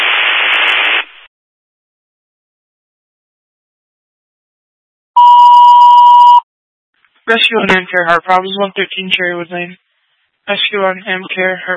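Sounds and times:
burst of radio static: 0:00.0 - 0:01.3
fire dispatch electronic alert tone for a smoke detector activation: 0:05.2 - 0:06.4
speech: 0:07.3 - 0:09.8, 0:10.5 - 0:11.7.

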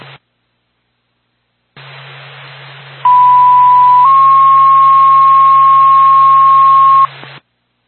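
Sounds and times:
radio static hiss: 0:00.0 - 0:07.8
fire department radio dispatch paging tone: 0:03.1 - 0:07.1.

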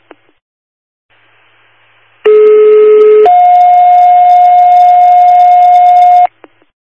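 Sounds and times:
fire dispatch radio paging tones for an automatic fire alarm: 0:02.3 - 0:06.3.

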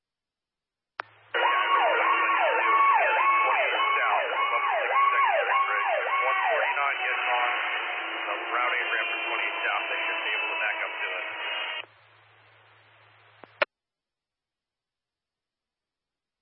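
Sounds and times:
fire engine siren wailing through a tinny fire radio channel: 0:01.4 - 0:11.8.

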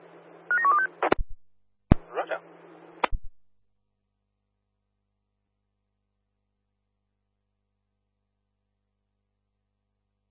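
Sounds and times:
telephone dialing tones: 0:00.5 - 0:01.0.

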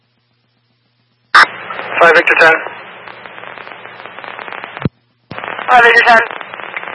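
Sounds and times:
fireworks crackling in rapid pops: 0:01.6 - 0:06.9
speech: 0:02.0 - 0:02.7, 0:05.7 - 0:06.4.

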